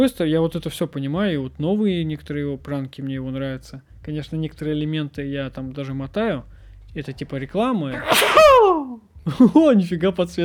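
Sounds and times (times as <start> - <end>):
speech: 0.0 - 10.4
single loud person sneezing: 8.0 - 9.0.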